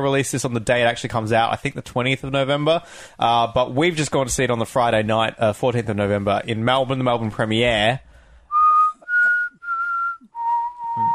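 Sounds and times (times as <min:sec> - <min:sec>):
speech: 0:00.0 - 0:08.1
breaths between whistled notes: 0:02.8 - 0:03.2, 0:08.0 - 0:08.6
person whistling a short tune: 0:08.5 - 0:11.1.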